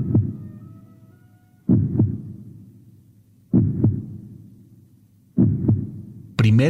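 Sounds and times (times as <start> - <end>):
deep heartbeat thumping: 0.0 - 0.6, 1.7 - 2.7, 3.5 - 4.5, 5.4 - 6.4.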